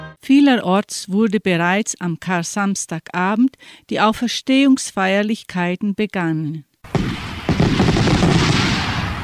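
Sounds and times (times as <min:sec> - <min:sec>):
speech: 0:00.3 - 0:07.2
thundering ceremonial salute cannon shots: 0:06.9 - 0:09.2.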